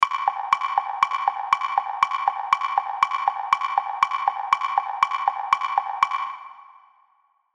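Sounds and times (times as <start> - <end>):
cartoon wood block clip clop tick tock: 0.0 - 6.7.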